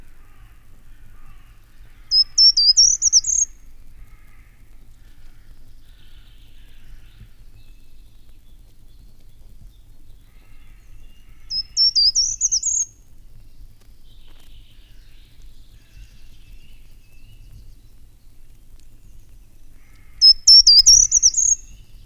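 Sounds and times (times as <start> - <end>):
short-toed treecreeper singing: 0.0 - 22.0.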